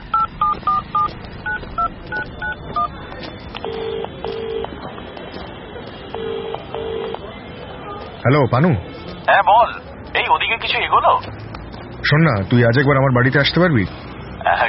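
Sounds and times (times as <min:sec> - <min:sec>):
telephone keypad beeps: 0:00.1 - 0:02.9, 0:03.5 - 0:04.7
telephone ringing tones: 0:00.1 - 0:02.9, 0:03.5 - 0:04.7, 0:06.1 - 0:07.3
speech: 0:08.2 - 0:11.4, 0:12.0 - 0:14.6.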